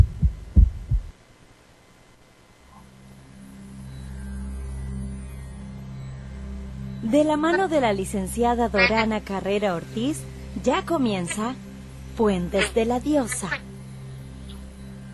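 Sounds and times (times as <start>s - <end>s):
heartbeat thumps: 0.0s - 1.2s
low droning hum: 0.0s - 15.1s
speech: 7.1s - 11.6s, 12.2s - 13.7s.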